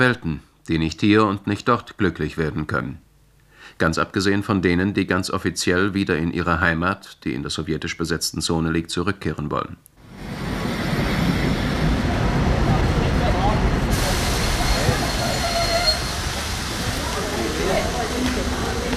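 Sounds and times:
speech: 0.0 - 3.0, 3.7 - 10.5
express train pulling into a German railway station: 10.0 - 18.9
indistinct voices: 10.9 - 18.9.

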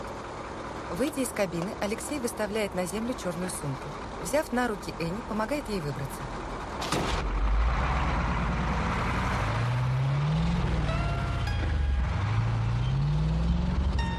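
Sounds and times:
truck engine accelerating away along a road: 0.0 - 14.1
speech: 0.9 - 7.4.

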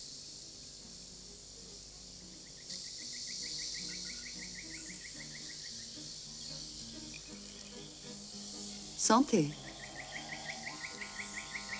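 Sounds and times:
bird chirping in a jungle café: 2.4 - 11.7
speech: 9.0 - 9.6.

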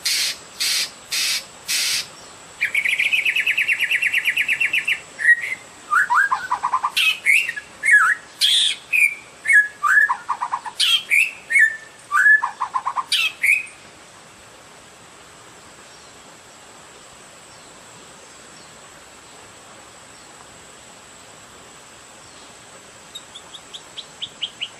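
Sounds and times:
Oriental magpie-robin song with whistled phrases and sharp high clicks: 0.1 - 13.8, 23.1 - 24.7.

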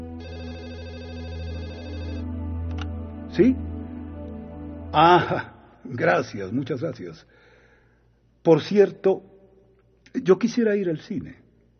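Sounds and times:
telephone ringing with electronic trill: 0.0 - 2.3
speech: 3.4 - 3.7, 4.9 - 7.4, 8.4 - 9.3, 10.1 - 11.4.

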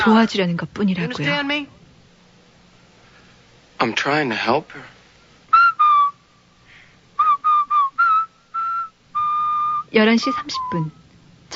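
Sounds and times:
speech: 0.0 - 1.8, 3.8 - 4.9, 9.9 - 11.5
several teenagers whistling a tune in a film scene: 5.5 - 6.2, 7.2 - 11.0.

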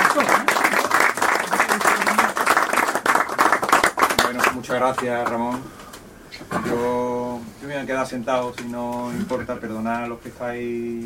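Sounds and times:
audience applause at the close of a talk: 0.0 - 5.1
speech: 4.7 - 11.0.

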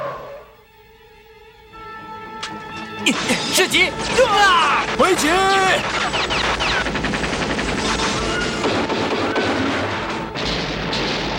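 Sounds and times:
speech: 3.0 - 6.3
rapid machine-gun fire: 3.1 - 11.3.

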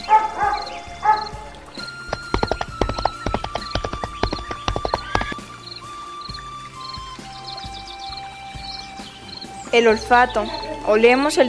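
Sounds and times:
galloping horse hoofbeats: 0.1 - 5.6
speech: 9.8 - 11.4.

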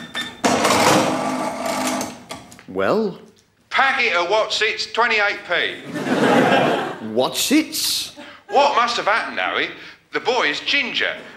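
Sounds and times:
cash register electronic beep scanning a barcode: 0.0 - 0.5
cash register mechanical whirring clatter: 0.0 - 2.4
speech: 2.7 - 11.3
laughter: 5.8 - 7.2.

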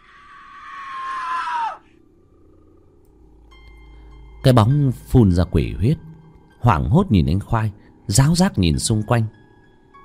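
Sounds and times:
horrible wild echoing scream in the night: 0.0 - 2.0
speech: 4.4 - 9.4.

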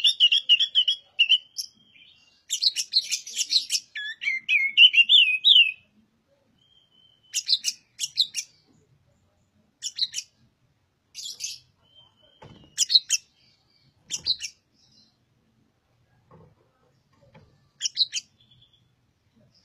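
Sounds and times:
Oriental magpie-robin singing energetically: 0.0 - 5.9, 6.6 - 8.7, 9.8 - 10.4, 11.1 - 15.3, 17.7 - 19.0.

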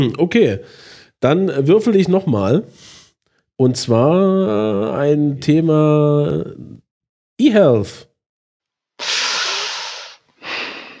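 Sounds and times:
speech: 0.0 - 2.9, 3.6 - 6.8, 7.4 - 8.1
breath huffed into a microphone: 9.0 - 10.9.

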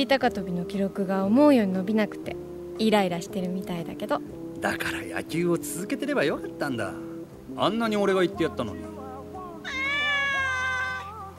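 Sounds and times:
speech: 0.0 - 8.9
large Persian cat with pale brown fur and white paws meowing: 9.6 - 11.3.

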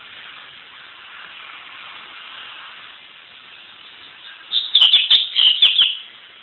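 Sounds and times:
Double-collared seedeater twittering: 4.1 - 6.1.

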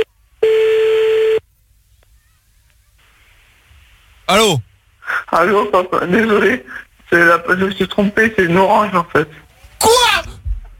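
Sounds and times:
steady mid-pitched telephone tone while calling back: 0.0 - 1.4
speech: 4.3 - 10.0.

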